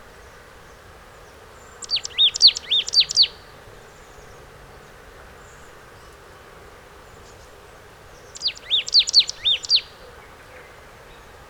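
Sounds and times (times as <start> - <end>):
steady background hiss: 0.0 - 11.4
marsh tit Poecile palustris calling: 1.8 - 3.4, 8.2 - 10.1.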